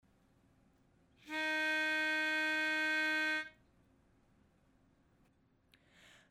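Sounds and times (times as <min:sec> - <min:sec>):
lead melody playing alone: 0:01.3 - 0:03.5.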